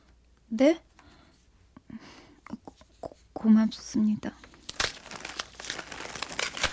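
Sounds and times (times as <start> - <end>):
speech: 0.5 - 0.9, 3.4 - 4.5
gift wrapping paper crinkling and rustling as it is peeled away: 4.4 - 6.7
gift wrapping paper tearing: 4.7 - 6.7.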